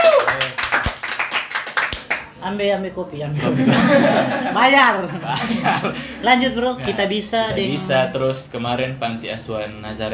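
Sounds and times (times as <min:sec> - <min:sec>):
audience applause: 0:00.0 - 0:02.2
speech: 0:02.4 - 0:10.1
laughter: 0:03.4 - 0:06.2.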